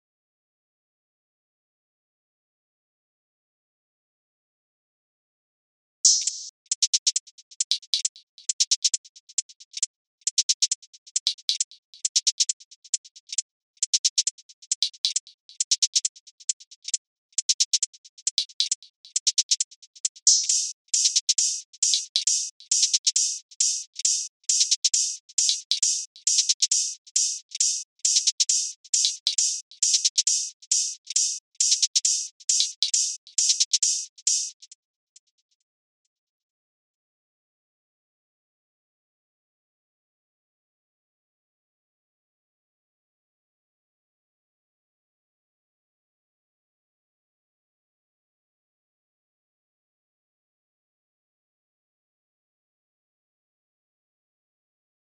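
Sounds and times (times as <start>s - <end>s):
hi-hats: 6.1s - 34.7s.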